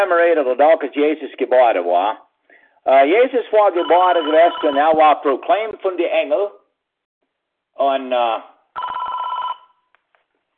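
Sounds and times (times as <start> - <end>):
speech: 0.0 - 2.2, 2.8 - 6.6, 7.8 - 8.5
telephone ringing: 3.7 - 5.0, 8.8 - 9.9.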